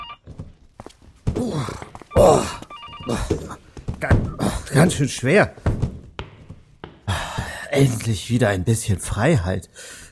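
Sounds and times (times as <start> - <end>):
telephone bell ringing: 0.0 - 0.3, 2.1 - 3.5
thumps: 0.2 - 7.1
speech: 4.8 - 5.6, 7.8 - 10.0.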